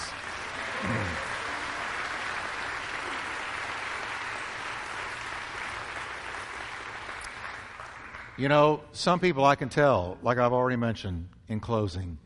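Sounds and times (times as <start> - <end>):
crowd applauding: 0.0 - 8.6
speech: 8.4 - 12.2.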